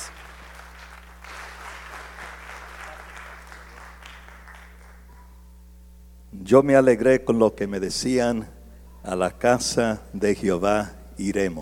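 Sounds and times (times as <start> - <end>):
sizable crowd applauding: 0.0 - 5.1
low constant hum: 0.0 - 11.6
speech: 6.4 - 11.6.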